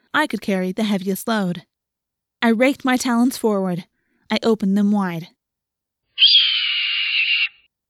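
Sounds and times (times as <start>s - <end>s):
speech: 0.2s - 1.7s, 2.4s - 5.4s, 6.2s - 6.4s
loud harsh hawk shriek: 6.2s - 7.7s.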